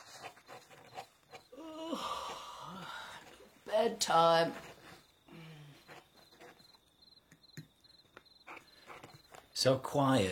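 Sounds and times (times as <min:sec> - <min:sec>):
crickets chirping: 0:00.0 - 0:10.3
speech: 0:03.8 - 0:04.7, 0:09.6 - 0:10.3.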